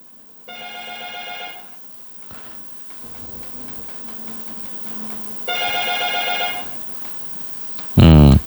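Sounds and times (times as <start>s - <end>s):
ordinary telephone ringing for an incoming call: 0.5s - 1.9s, 5.4s - 7.0s.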